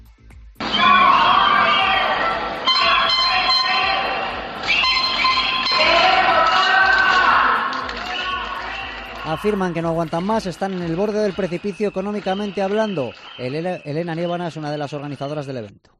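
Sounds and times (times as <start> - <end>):
street protest crowd chanting slogans in unison: 0.6 - 13.4
speech: 9.3 - 15.9.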